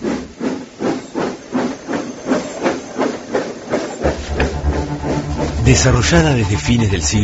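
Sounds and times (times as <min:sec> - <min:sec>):
steam engine chugging with hissing steam: 0:00.0 - 0:07.2
deep mechanical rumble: 0:04.1 - 0:07.2
speech: 0:05.7 - 0:07.2.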